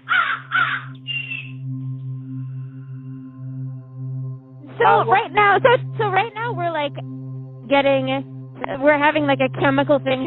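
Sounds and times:
crows cawing: 0.0s - 1.6s
low steady hum: 1.0s - 10.2s
speech: 4.8s - 10.2s.

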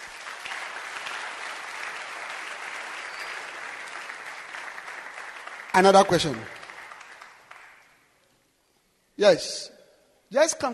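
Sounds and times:
audience clapping hands: 0.0s - 8.2s
speech: 5.8s - 6.6s, 9.2s - 9.7s, 10.3s - 10.7s.

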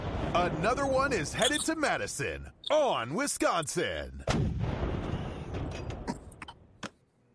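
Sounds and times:
deep rumbling recruiting cannon blast sound effect: 0.0s - 1.3s, 4.3s - 6.1s
speech: 0.4s - 4.5s.

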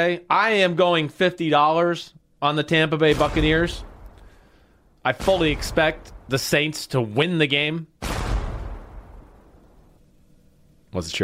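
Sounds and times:
speech: 0.0s - 3.9s, 5.0s - 7.9s, 10.9s - 11.2s
ship's cannon blast: 3.1s - 6.8s, 8.0s - 10.0s.

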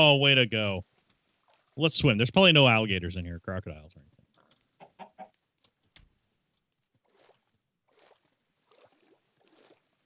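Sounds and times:
speech: 0.0s - 0.9s, 1.8s - 4.1s
video game chicken clucking: 4.8s - 5.4s.

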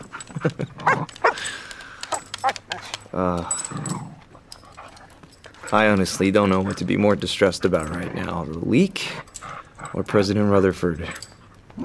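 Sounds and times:
dog collar tags jingling: 0.0s - 11.8s
speech: 0.4s - 1.0s, 3.2s - 3.9s, 5.7s - 9.2s, 9.9s - 11.8s
excited female dog whining: 0.8s - 4.5s, 11.7s - 11.8s
dog snuffling breaths: 0.8s - 8.4s.

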